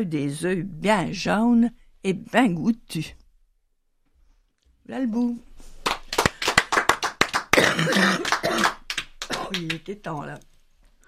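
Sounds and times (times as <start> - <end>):
speech: 0.0 - 3.2, 4.9 - 5.7, 9.5 - 10.5
people clapping: 5.8 - 10.0
person coughing roughly: 7.6 - 8.8.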